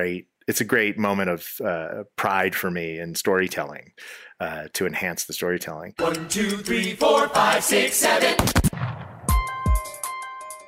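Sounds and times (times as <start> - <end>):
speech: 0.0 - 8.8
duel gunshot blasts: 8.4 - 9.6.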